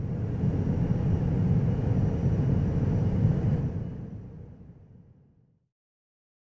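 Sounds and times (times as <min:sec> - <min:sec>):
big airplane engine roar: 0:00.0 - 0:04.8.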